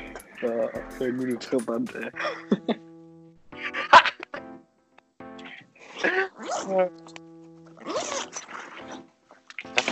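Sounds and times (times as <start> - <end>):
speech: 0.4 - 2.9, 6.7 - 7.2
laughter: 1.2 - 2.9
zipper being opened and closed: 5.9 - 7.1, 7.6 - 9.8.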